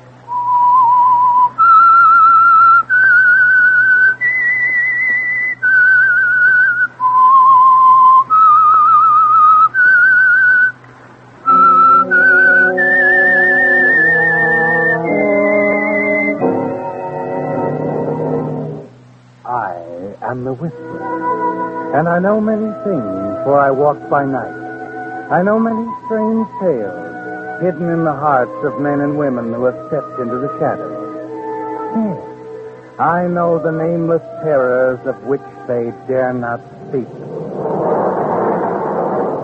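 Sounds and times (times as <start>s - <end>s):
low hum: 0.0s - 39.4s
clear loud whistled theme melody: 0.3s - 10.8s, 11.4s - 18.9s, 20.7s - 37.0s
orchestral chords: 11.4s - 19.0s, 19.7s - 37.5s
speech: 22.2s - 24.6s, 25.3s - 27.0s, 27.6s - 30.9s, 33.0s - 37.7s.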